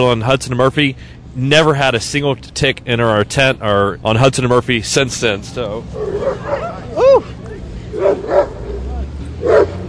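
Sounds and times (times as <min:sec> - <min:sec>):
speech: 0:00.0 - 0:07.3
low rumble: 0:00.0 - 0:09.8
dog barking at dogs walking by: 0:06.0 - 0:06.8, 0:08.0 - 0:08.8, 0:09.4 - 0:09.8.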